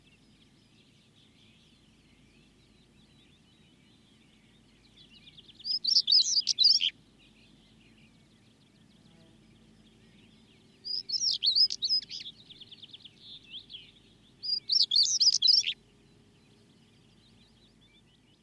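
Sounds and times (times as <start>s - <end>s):
stonechat calling: 5.6s - 6.9s, 10.9s - 12.3s, 14.5s - 15.8s.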